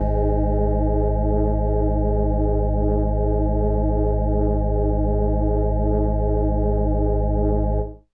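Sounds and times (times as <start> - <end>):
indie kawaii organ note G sharp one: 0.0 - 8.0.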